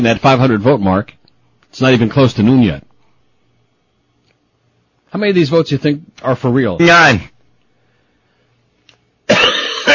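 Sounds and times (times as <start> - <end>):
speech: 0.0 - 2.9, 5.1 - 7.3
harsh raspy cough in a coughing fit: 9.3 - 9.9.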